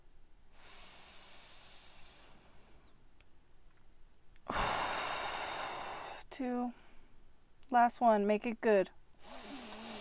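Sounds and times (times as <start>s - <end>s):
deep breath during a guided meditation: 0.5s - 3.0s, 4.4s - 7.2s, 9.2s - 9.9s
speech: 6.4s - 6.8s, 7.7s - 9.4s.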